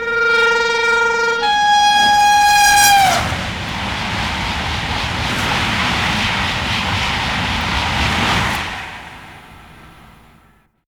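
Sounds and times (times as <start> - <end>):
TGV horn: 0.0 - 5.6
TGV passing close: 0.0 - 10.8.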